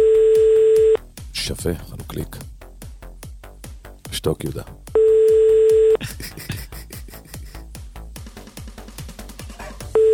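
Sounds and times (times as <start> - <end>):
loud electronic telephone ringing tone: 0.0 - 1.0, 5.0 - 6.0, 10.0 - 10.1
speech: 1.6 - 2.6, 4.2 - 5.0
laughter: 6.0 - 7.6.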